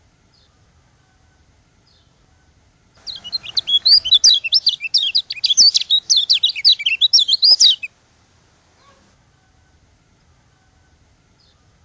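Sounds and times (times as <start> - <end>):
White-eye from Lombok giving high sliding chirps: 3.0 - 7.9.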